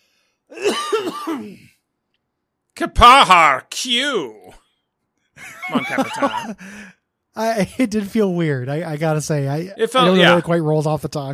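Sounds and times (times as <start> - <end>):
person coughing: 0.5 - 1.8, 5.9 - 6.6
speech: 0.5 - 1.8, 2.8 - 4.6, 5.4 - 11.3
laughter: 5.4 - 6.9, 10.0 - 10.5.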